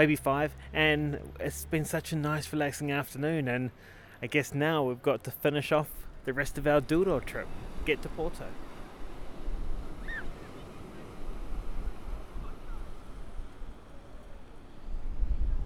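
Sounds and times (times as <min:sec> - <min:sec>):
speech: 0:00.0 - 0:08.6
Atlantic Ocean waves breaking along the shore where the Douro River meets the ocean: 0:00.0 - 0:15.6
wind buffeting the microphone: 0:06.1 - 0:15.6.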